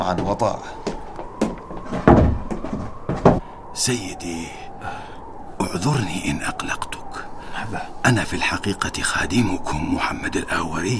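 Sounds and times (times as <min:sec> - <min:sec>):
speech: 0:00.0 - 0:00.9, 0:03.8 - 0:07.0, 0:07.6 - 0:10.9
heavy wooden door scraping, creaking and thudding shut: 0:01.3 - 0:03.4.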